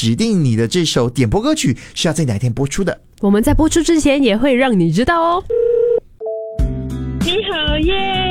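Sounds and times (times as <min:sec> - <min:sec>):
speech: 0:00.0 - 0:05.7, 0:07.4 - 0:08.3
short clear telephone dialing tones: 0:05.5 - 0:06.5.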